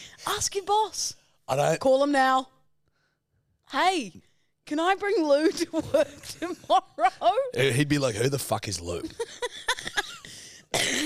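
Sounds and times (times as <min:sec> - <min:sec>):
speech: 0:00.2 - 0:02.6, 0:03.7 - 0:09.7
short sharp coughs: 0:09.4 - 0:11.0.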